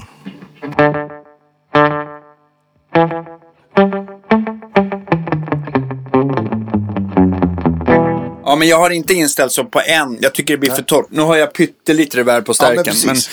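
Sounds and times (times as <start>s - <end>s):
electric guitar played through a Deep Blue Delay slapback delay pedal: 0.0s - 8.5s
speech: 8.6s - 13.3s.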